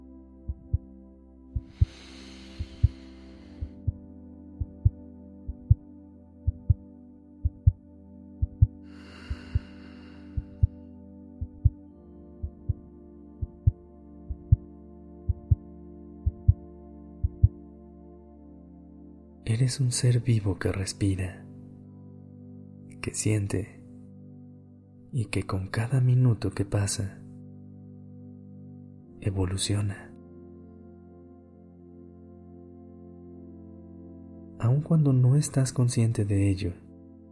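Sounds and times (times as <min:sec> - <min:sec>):
heartbeat sound effect double thumps: 0:00.5 - 0:00.9, 0:01.6 - 0:03.0, 0:03.6 - 0:04.0, 0:04.6 - 0:05.8, 0:06.4 - 0:06.8, 0:07.4 - 0:07.8, 0:08.4 - 0:09.8, 0:10.4 - 0:10.8, 0:11.4 - 0:11.8, 0:12.4 - 0:14.7, 0:15.3 - 0:16.6, 0:17.2 - 0:17.6
speech: 0:19.6 - 0:21.4, 0:23.1 - 0:23.8, 0:25.1 - 0:27.2, 0:29.2 - 0:30.0, 0:34.8 - 0:36.8.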